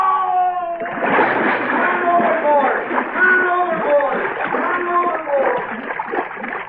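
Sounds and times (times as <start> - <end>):
man falling overboard from a ship's rail splashing into water: 0.8 - 6.6
agitated voices calling out: 1.7 - 5.7.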